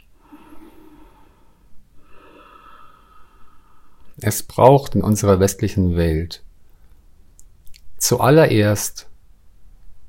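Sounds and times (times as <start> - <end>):
breath drawn in through the nose: 0.2 - 4.1
slower airy exhale: 0.2 - 4.1
speech: 4.2 - 6.5, 8.1 - 9.1.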